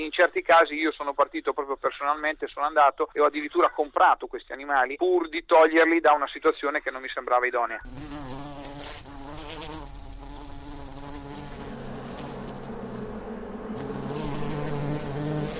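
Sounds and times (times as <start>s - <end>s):
speech: 0.0s - 8.5s
many bees buzzing: 7.8s - 15.5s.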